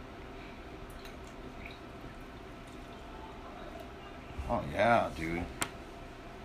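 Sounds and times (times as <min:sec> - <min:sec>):
beer pouring into a glass: 0:00.8 - 0:04.7
speech: 0:04.5 - 0:05.6.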